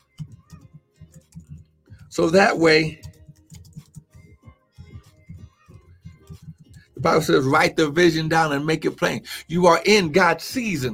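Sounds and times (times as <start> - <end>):
typing on a computer keyboard: 0.0 - 2.1, 2.8 - 4.3
speech: 2.2 - 3.1, 7.0 - 10.9.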